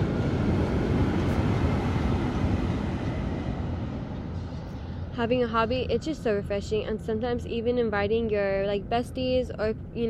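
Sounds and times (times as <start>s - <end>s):
train rumbling past: 0.0s - 7.9s
speech: 5.2s - 10.0s.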